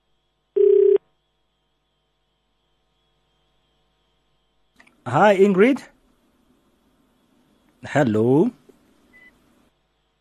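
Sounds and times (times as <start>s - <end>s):
telephone ringback tone on a phone line: 0.6s - 1.0s
speech: 5.0s - 5.9s, 7.8s - 8.6s.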